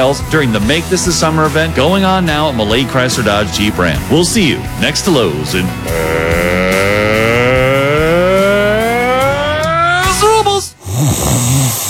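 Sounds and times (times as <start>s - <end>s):
speech: 0.0s - 6.6s
person snoring: 5.7s - 9.6s, 10.8s - 11.8s.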